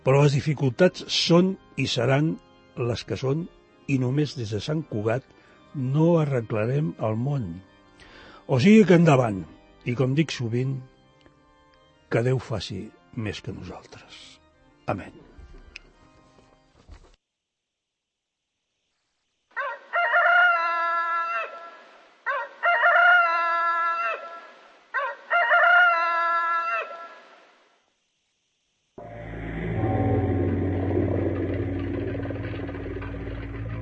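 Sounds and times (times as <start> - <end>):
speech: 0.0 - 7.7, 8.5 - 10.9, 12.1 - 15.3
rooster crowing: 19.6 - 27.2
steady low rumbling noise: 29.0 - 33.8.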